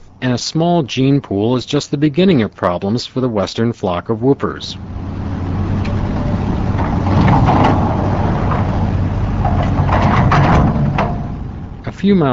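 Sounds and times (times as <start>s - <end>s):
heavy earth mover's diesel engine rumbling: 0.0s - 12.3s
speech: 0.2s - 4.9s, 12.0s - 12.3s
clanks and gritty rattles of dirt and rock dumped into trucks: 5.8s - 11.5s.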